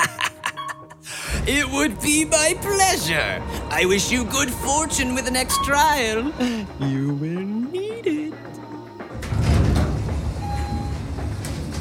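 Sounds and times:
heavy mechanical door sliding open with grinding roll: 1.2s - 6.2s, 9.0s - 11.7s
brief tonal whine of mechanical door: 1.3s - 11.7s
speech: 1.5s - 8.7s.

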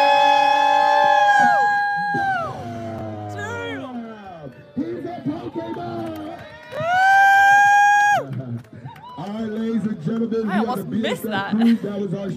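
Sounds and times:
crowd whooping and yelling: 0.0s - 9.5s
speech: 10.7s - 12.3s.

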